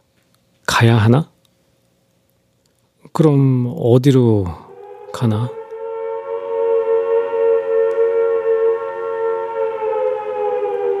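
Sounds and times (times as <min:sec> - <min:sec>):
speech: 0:00.8 - 0:01.3, 0:03.2 - 0:04.6, 0:05.2 - 0:05.6
noon siren wailing: 0:04.4 - 0:10.9.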